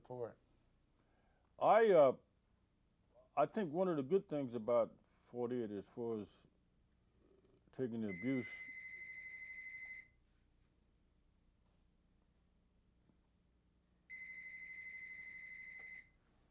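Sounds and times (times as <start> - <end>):
low room hum: 0.0 - 16.4
speech: 0.1 - 0.5, 1.6 - 2.2, 3.4 - 6.5, 7.7 - 8.7
telephone ringing with a shrill electronic trill: 8.1 - 10.1, 14.1 - 16.1.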